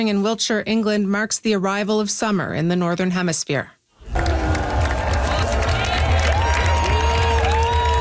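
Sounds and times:
speech: 0.0 - 4.3
large outdoor crowd cheering and chanting: 4.0 - 7.9
drumming: 4.1 - 7.9.

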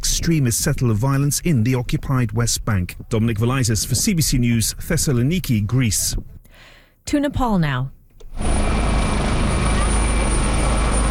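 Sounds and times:
speech: 0.2 - 6.4, 7.1 - 8.0
helicopter flying overhead with rotor thump and engine drone: 8.4 - 11.0.

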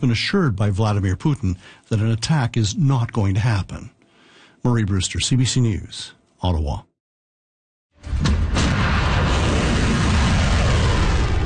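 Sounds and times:
speech: 0.0 - 4.0, 4.6 - 6.9
volley of Iranian ballistic missiles launching with a roar: 8.0 - 11.4
sharp cracks: 8.1 - 11.4.

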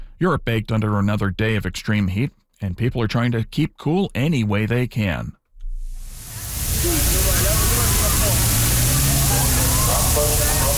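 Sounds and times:
speech: 0.2 - 5.4
police water cannon spraying water on crowd: 6.0 - 10.7
crowd voices and shouts: 6.6 - 10.7.

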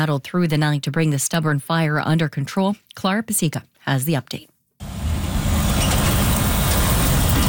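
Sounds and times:
speech: 0.0 - 4.5
heavy trucks driving past on road: 4.8 - 7.4.

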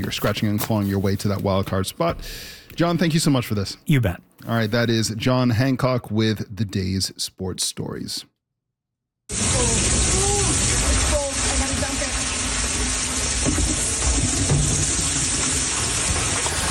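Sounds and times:
speech: 0.0 - 8.3, 9.3 - 9.8
water pouring and splashing into a flooded basement in St. Catharines after heavy rainfall: 9.3 - 16.7.

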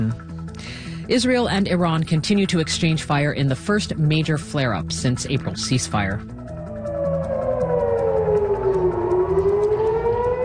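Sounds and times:
speech: 1.1 - 6.4
air raid siren wailing: 6.3 - 10.4.

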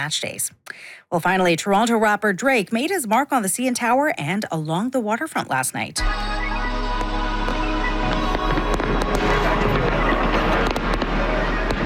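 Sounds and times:
speech: 0.0 - 6.4
crowd cheering: 6.0 - 11.8
fireworks exploding over the Toronto waterfront: 6.1 - 11.8.

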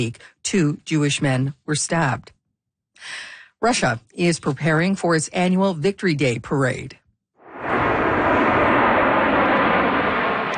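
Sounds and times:
speech: 0.0 - 2.4, 3.0 - 7.0
jet aircraft passing overhead: 7.4 - 10.5.

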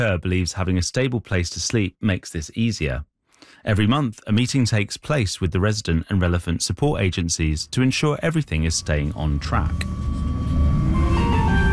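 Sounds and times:
speech: 0.0 - 10.2
tram moving heard from inside: 7.2 - 11.7
faint high tonal whine: 7.7 - 11.7.

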